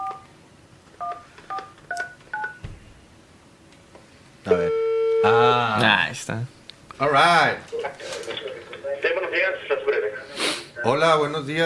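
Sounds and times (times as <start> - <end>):
dual-tone beeps from a telephone keypad being dialed: 1.0 - 2.6
speech: 4.4 - 11.6.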